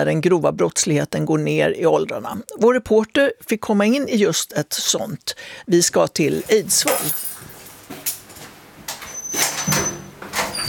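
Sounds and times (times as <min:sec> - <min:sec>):
speech: 0:00.0 - 0:07.3
heavy prison cell door sliding and clanking shut: 0:08.9 - 0:10.6.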